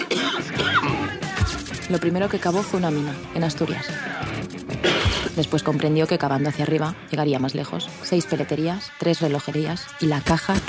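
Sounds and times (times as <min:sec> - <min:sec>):
man clearing his throat: 0:00.0 - 0:01.2, 0:04.8 - 0:05.4
man coughing: 0:00.0 - 0:01.2, 0:04.8 - 0:05.4
speech: 0:01.9 - 0:10.6.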